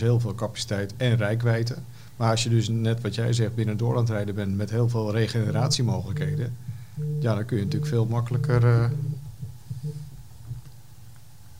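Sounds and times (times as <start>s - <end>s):
speech: 0.0s - 9.2s
mobile phone vibrating: 5.4s - 10.2s.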